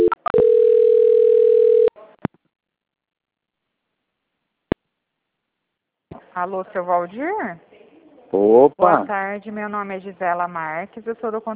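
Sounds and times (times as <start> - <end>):
steady telephone line tone during a call transfer: 0.0 - 1.9
speech: 6.4 - 7.7, 8.3 - 11.5.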